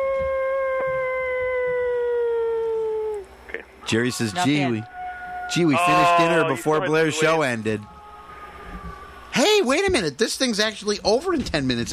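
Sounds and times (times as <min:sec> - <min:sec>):
wolf howl: 0:00.0 - 0:03.3, 0:04.4 - 0:09.4
speech: 0:03.9 - 0:04.9, 0:05.5 - 0:08.0, 0:09.6 - 0:11.9.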